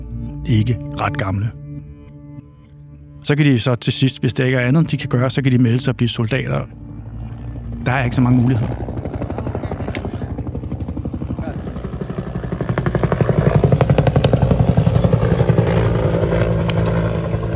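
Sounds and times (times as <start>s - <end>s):
speech: 0.4s - 1.6s, 3.2s - 6.8s, 7.8s - 8.9s
military helicopter rotor chopping low over treetops: 4.9s - 17.5s.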